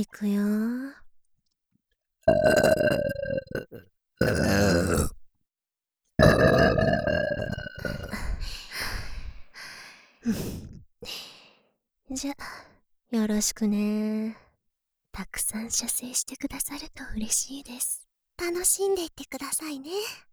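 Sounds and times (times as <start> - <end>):
speech: 0.0 - 1.0, 2.3 - 5.0, 12.1 - 14.4, 15.2 - 20.3
long deep loud burps: 2.3 - 5.2, 6.2 - 8.3.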